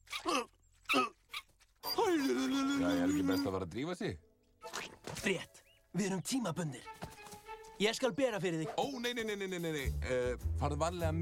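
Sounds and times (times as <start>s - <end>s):
small dog yipping and whimpering: 0.0s - 0.3s, 0.9s - 3.6s
speech: 3.3s - 4.3s, 5.2s - 7.1s, 7.8s - 11.1s.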